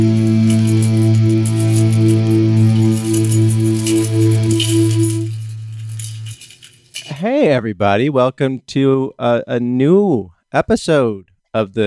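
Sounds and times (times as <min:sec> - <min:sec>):
loud sustained musical drone: 0:00.0 - 0:07.1
bunch of keys jangling and clinking: 0:00.0 - 0:07.2
speech: 0:07.6 - 0:11.8.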